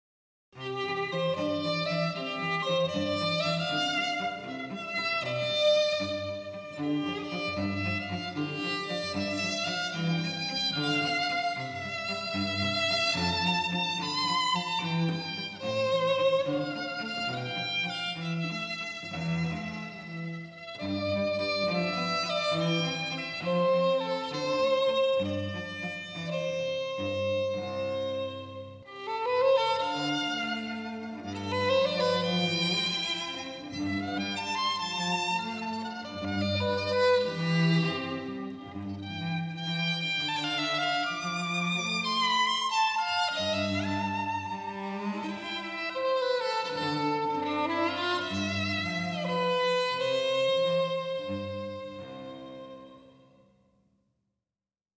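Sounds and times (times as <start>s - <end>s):
cello in a waltz duet: 0.6s - 53.6s
violin in a waltz duet: 0.6s - 53.6s.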